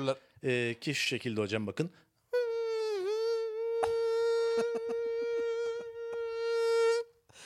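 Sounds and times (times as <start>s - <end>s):
speech: 0.0s - 2.1s
person imitating a mosquito's whine in the Nihavent makam: 2.4s - 7.1s.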